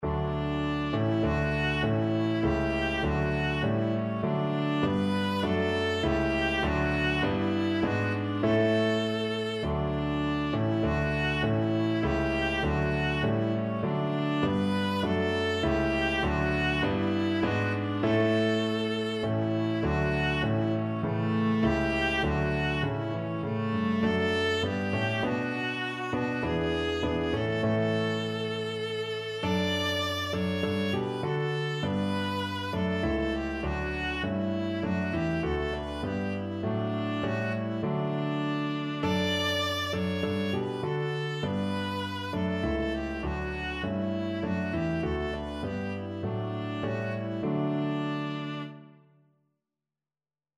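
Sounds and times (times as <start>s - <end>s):
viola playing a national anthem: 0.0s - 48.9s.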